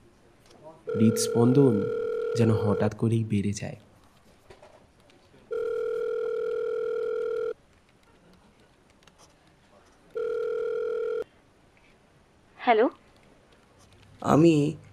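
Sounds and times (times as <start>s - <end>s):
faint noise: 0.0s - 14.9s
outgoing phone call ringing tone: 0.9s - 3.0s, 5.5s - 7.6s, 10.2s - 11.2s
speech: 0.9s - 3.9s, 14.2s - 14.8s.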